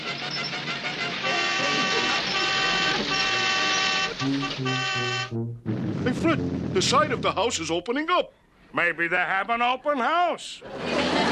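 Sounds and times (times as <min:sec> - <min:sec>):
loud car horn honking: 0:00.4 - 0:05.6
speech: 0:05.0 - 0:10.9
laughter: 0:10.6 - 0:11.3.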